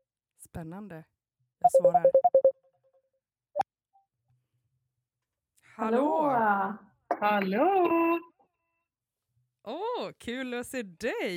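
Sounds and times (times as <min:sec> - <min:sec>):
speech: 0:00.5 - 0:02.4, 0:05.8 - 0:08.3, 0:09.6 - 0:11.3
short electronic beeps from a phone ringtone: 0:01.7 - 0:02.5.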